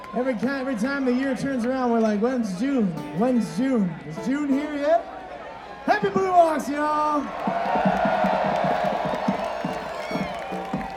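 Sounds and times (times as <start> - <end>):
speech: 0.1 - 5.2, 5.8 - 8.1
live crowd cheering and whooping: 5.4 - 10.9
scattered clapping: 7.3 - 10.9.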